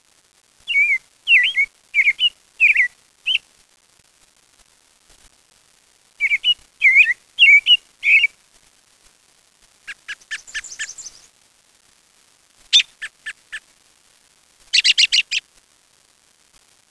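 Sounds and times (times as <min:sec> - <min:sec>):
American robin singing: 0:00.7 - 0:03.4, 0:06.2 - 0:08.3, 0:09.9 - 0:11.3, 0:14.8 - 0:15.4.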